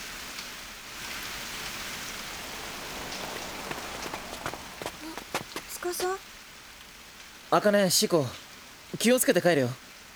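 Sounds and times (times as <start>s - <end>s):
heavy rain pouring: 1.0s - 6.5s
sharper rain drops pattering and splashing: 1.3s - 6.2s
speech: 5.9s - 6.3s, 7.5s - 9.8s.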